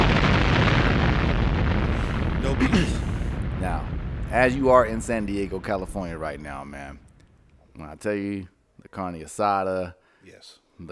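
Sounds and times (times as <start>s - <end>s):
explosion rumble: 0.0s - 8.1s
speech: 2.6s - 7.0s, 7.8s - 10.8s.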